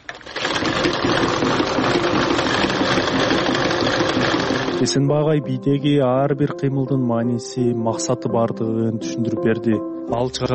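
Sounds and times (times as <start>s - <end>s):
sewing machine stitching a belt: 0.0s - 5.0s
speech: 4.8s - 10.5s.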